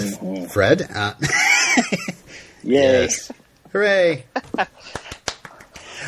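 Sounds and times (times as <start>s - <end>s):
speech: 0.1s - 5.0s
laughter: 1.2s - 2.3s
person clapping hands: 4.4s - 6.0s.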